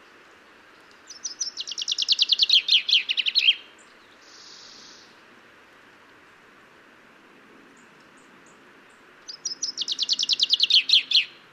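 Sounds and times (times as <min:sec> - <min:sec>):
common chaffinch singing: 0:00.4 - 0:05.2, 0:07.8 - 0:11.5.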